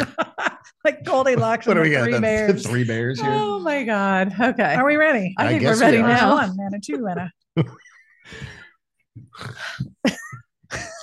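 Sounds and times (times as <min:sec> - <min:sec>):
laughter: 0:00.0 - 0:03.6
speech: 0:00.8 - 0:08.6, 0:09.4 - 0:11.0
person snorting: 0:09.3 - 0:09.8.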